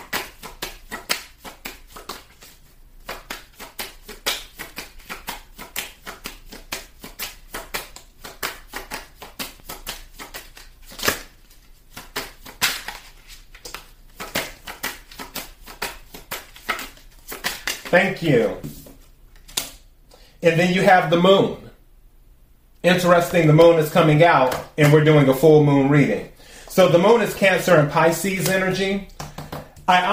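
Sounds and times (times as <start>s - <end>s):
tarot cards being shuffled: 0.0s - 19.8s
speech: 17.9s - 18.8s, 20.4s - 21.6s, 22.8s - 29.1s, 29.9s - 30.1s.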